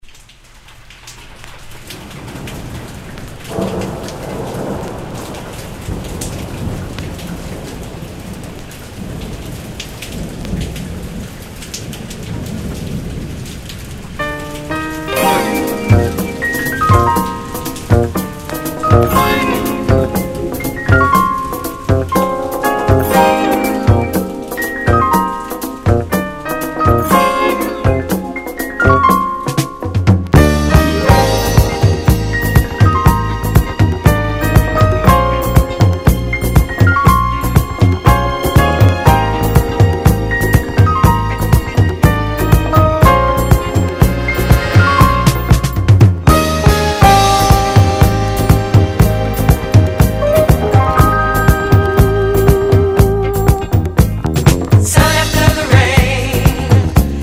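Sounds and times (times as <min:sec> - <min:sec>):
disco strings: 0:14.8 - 0:57.2.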